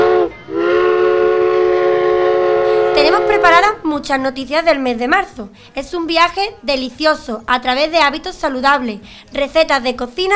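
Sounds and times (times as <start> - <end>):
steam train whistle: 0.0 - 3.6
speech: 3.4 - 10.3.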